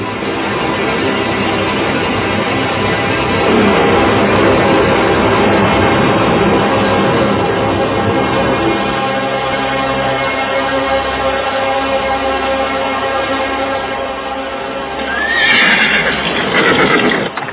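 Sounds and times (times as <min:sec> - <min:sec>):
sustained tonal drone: 0:00.0 - 0:15.2
horse neighing while being ridden: 0:15.1 - 0:17.4.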